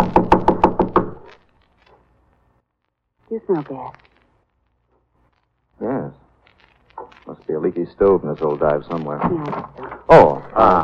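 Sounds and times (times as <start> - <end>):
firm knocks on a wooden door: 0.0 - 1.2
speech: 3.4 - 4.0, 7.5 - 10.8.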